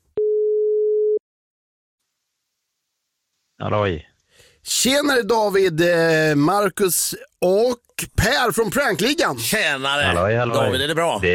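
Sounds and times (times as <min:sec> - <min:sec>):
telephone tone after a number is dialed: 0:00.2 - 0:01.2
speech: 0:03.6 - 0:11.3.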